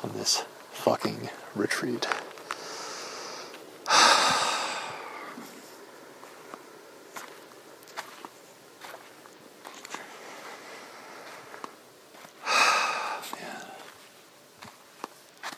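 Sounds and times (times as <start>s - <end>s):
speech: 0.0s - 2.2s
footsteps of a person walking outdoors at night in the desert: 0.0s - 15.5s
quiet hiss: 0.0s - 15.5s
sharp heavy breath or snort: 2.5s - 5.7s, 12.4s - 13.9s.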